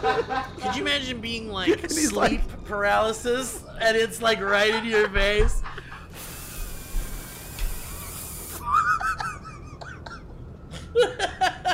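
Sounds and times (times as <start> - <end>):
people laughing: 0.0 - 2.4, 4.0 - 6.3, 8.6 - 11.7
speech: 0.0 - 5.7
voice imitating spraying water hiss: 6.2 - 8.6.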